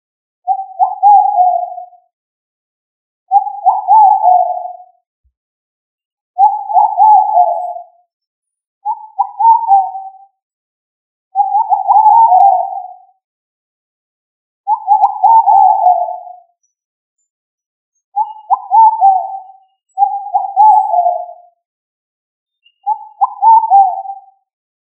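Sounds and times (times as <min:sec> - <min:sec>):
pigeon cooing in low soft phrases: 0:00.5 - 0:01.9, 0:03.3 - 0:04.8, 0:06.4 - 0:07.8, 0:08.9 - 0:10.1, 0:11.4 - 0:13.0, 0:14.7 - 0:16.3, 0:18.2 - 0:21.4, 0:22.9 - 0:24.2.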